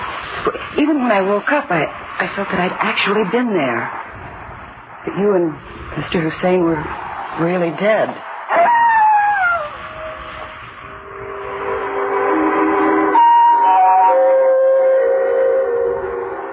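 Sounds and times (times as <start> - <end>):
speech: 0.4 - 4.0, 5.0 - 8.3
distant jackal howling at night: 8.3 - 16.5.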